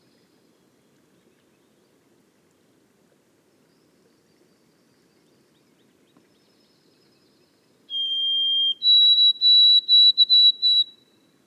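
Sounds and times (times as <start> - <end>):
white-throated sparrow whistled song in the boreal forest of Haute-Côte-Nord: 7.9 - 11.0.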